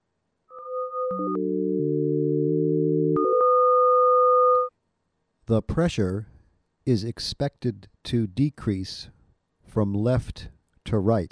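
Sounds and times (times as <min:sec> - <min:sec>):
pure electronic sine tones sonifying V velocity data: 0:00.5 - 0:04.7
speech: 0:01.1 - 0:02.0, 0:05.5 - 0:06.3, 0:06.9 - 0:11.3.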